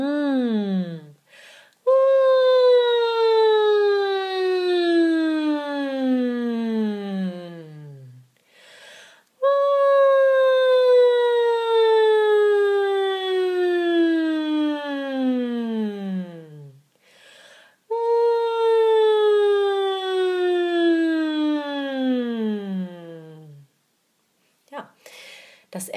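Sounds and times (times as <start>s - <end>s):
voice imitating a siren on a hummed ng sound: 0.0s - 1.1s, 1.9s - 8.2s, 9.4s - 16.8s, 17.9s - 23.6s
short breaths: 1.2s - 1.8s, 8.4s - 9.3s, 17.0s - 17.8s, 25.0s - 25.7s.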